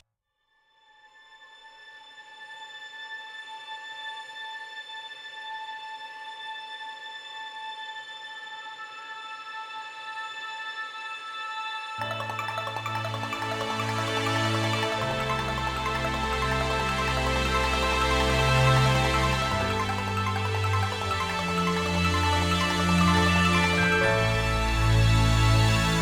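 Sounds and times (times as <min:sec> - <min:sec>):
chiptune stinger: 0:12.0 - 0:25.9.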